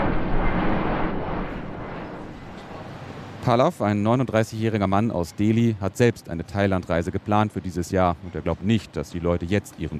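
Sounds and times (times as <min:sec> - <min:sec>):
jet roar of an airplane passing overhead: 0:00.0 - 0:03.4
speech: 0:03.4 - 0:09.9.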